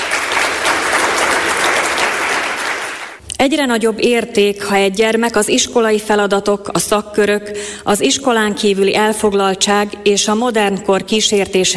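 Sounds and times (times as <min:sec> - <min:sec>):
audience applauding at a prize event for a children's recitation competition: 0:00.0 - 0:03.2
speech: 0:03.4 - 0:11.7.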